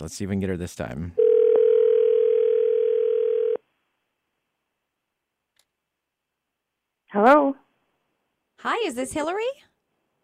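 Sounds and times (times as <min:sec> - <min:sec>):
speech: 0:00.0 - 0:01.2, 0:08.7 - 0:09.7
outgoing phone ringing tone: 0:01.2 - 0:03.6.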